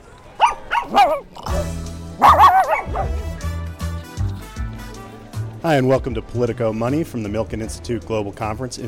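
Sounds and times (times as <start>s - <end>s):
several small dogs yipping and barking: 0.4s - 3.3s
speech: 0.9s - 1.8s, 5.6s - 8.8s.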